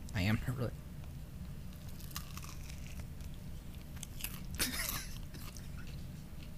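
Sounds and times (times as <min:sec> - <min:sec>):
steady low hum: 0:00.0 - 0:06.5
speech: 0:00.2 - 0:00.8
biting and chewing a breaded chicken sandwich with Cheetos and mayonnaise: 0:01.7 - 0:06.5.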